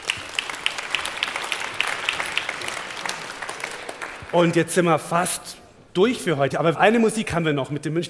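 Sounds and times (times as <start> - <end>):
crowd clapping: 0.0 - 4.9
speech: 4.3 - 8.0.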